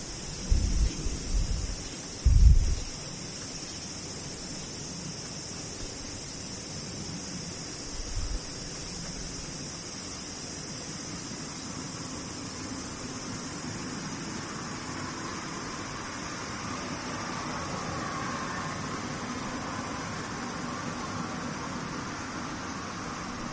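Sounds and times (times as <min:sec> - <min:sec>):
cicadas droning: 0:00.0 - 0:23.5
constant outdoor hiss: 0:00.0 - 0:23.5
low dull thumps: 0:02.2 - 0:02.8.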